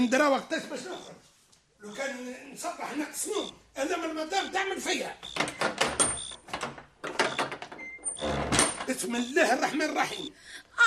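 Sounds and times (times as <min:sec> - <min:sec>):
speech: 0:00.0 - 0:06.0, 0:08.9 - 0:10.8
door being opened with scraping rattling clunks: 0:05.3 - 0:09.0.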